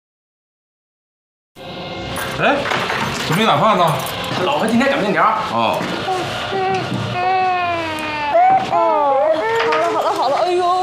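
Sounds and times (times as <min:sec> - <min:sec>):
speech: 0:02.4 - 0:06.7
baby crying: 0:06.0 - 0:10.8.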